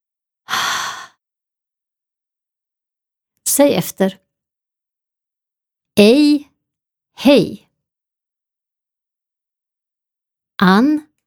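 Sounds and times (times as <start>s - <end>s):
voiceless Swedish H sound breathed through an open mouth: 0.5s - 1.1s
speech: 3.5s - 4.2s, 6.0s - 6.5s, 7.2s - 7.6s, 10.6s - 11.1s.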